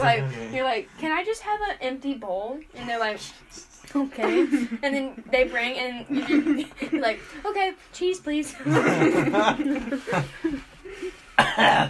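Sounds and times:
speech: 0.0 - 11.8
laughter: 4.2 - 4.9, 6.1 - 7.3, 8.6 - 11.3
loud cough: 11.4 - 11.8.

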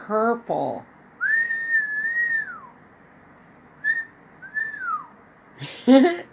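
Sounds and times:
speech: 0.1 - 0.9, 5.6 - 6.3
person wolf whistling: 1.2 - 2.7, 3.8 - 5.1.

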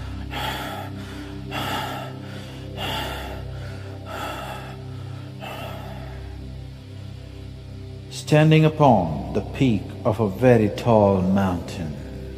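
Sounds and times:
rapid rasping gasps of breath: 0.0 - 6.8
low sustained drone: 0.0 - 12.3
speech: 8.3 - 12.0.

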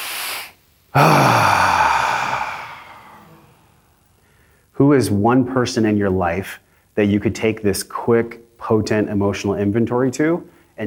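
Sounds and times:
speech: 1.0 - 1.4, 4.8 - 10.8
audience at a live event taking a deep breath together: 1.0 - 3.5, 4.2 - 4.7.

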